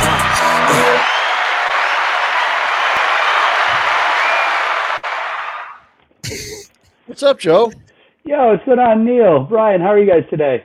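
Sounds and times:
audience applause and cheering welcoming a guest: 0:00.0 - 0:05.9
speech: 0:07.2 - 0:10.6.

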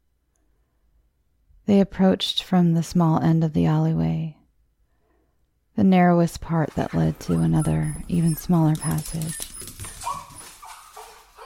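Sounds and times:
speech: 0:01.7 - 0:04.4, 0:05.8 - 0:09.7
squirming dog whimpering in an alleyway: 0:06.7 - 0:11.4
faint rustle: 0:08.0 - 0:11.4.

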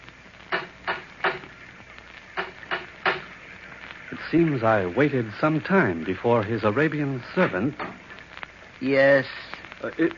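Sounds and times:
knocking on a wooden door of an isolated villa in the rain: 0:02.4 - 0:03.2
speech: 0:04.3 - 0:08.0, 0:08.8 - 0:10.1.

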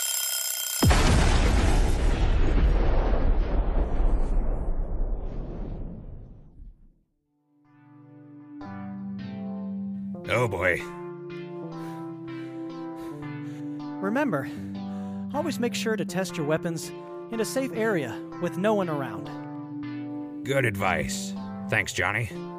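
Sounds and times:
grenade detonating in a loud blast: 0:00.8 - 0:06.9
speech: 0:10.5 - 0:11.0, 0:14.1 - 0:14.7, 0:15.3 - 0:19.4, 0:20.5 - 0:22.5.

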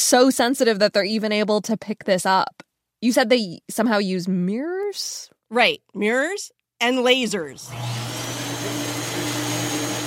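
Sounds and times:
speech: 0:00.1 - 0:08.1
shoe scrubbing machine whirring at a gravitational wave observatory: 0:07.6 - 0:10.0.

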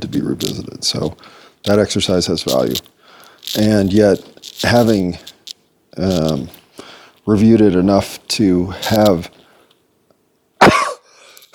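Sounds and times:
speech: 0:00.1 - 0:05.3, 0:06.0 - 0:06.6, 0:07.2 - 0:09.4
harsh cough: 0:10.6 - 0:11.5.

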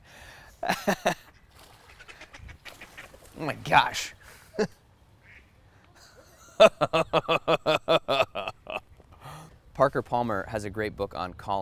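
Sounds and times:
steady outdoor noise: 0:00.0 - 0:11.6
speech: 0:00.6 - 0:01.2, 0:03.4 - 0:04.8, 0:06.6 - 0:08.2, 0:09.8 - 0:11.6
ducks quacking: 0:01.2 - 0:04.1, 0:05.2 - 0:05.9
laughter: 0:06.0 - 0:08.8.

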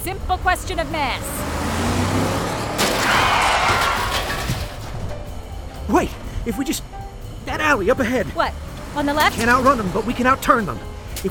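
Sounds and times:
speech: 0:00.0 - 0:01.4, 0:05.9 - 0:11.3
road rumble: 0:00.0 - 0:11.3
steady engine roar: 0:00.0 - 0:11.3
car rammed by a pursuing vehicle with a crunching impact: 0:00.7 - 0:06.0, 0:08.6 - 0:11.3
sharp rising squeal: 0:01.6 - 0:06.0.

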